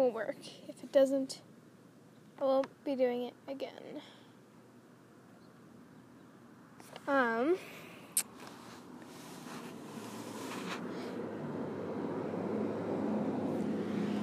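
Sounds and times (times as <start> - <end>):
speech: 0.0 - 1.5, 2.4 - 4.2, 7.1 - 7.8
cars passing on a residential road: 8.5 - 14.2.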